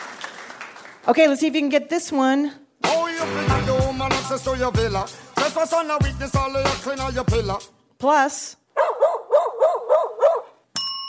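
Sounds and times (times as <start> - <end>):
speech: 1.0 - 8.6
dog barking loudly: 8.8 - 10.6.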